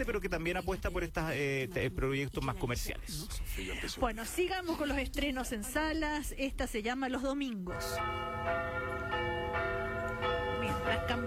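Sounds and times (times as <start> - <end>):
speech: 0.0 - 9.3
church bells calling to mass: 7.7 - 11.2.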